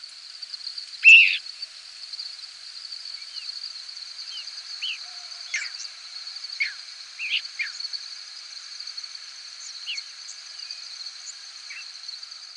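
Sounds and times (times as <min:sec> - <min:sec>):
crickets droning: 0:00.0 - 0:12.5
migrating birds calling in flight at night: 0:01.0 - 0:01.4.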